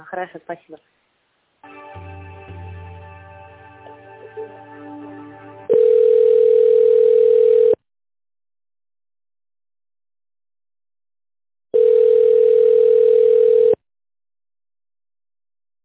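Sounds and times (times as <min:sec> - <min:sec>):
speech: 0:00.0 - 0:01.8
hold music during call transfer: 0:01.6 - 0:06.2
phone ringback tone heard through the receiver: 0:05.7 - 0:07.8, 0:11.8 - 0:13.8.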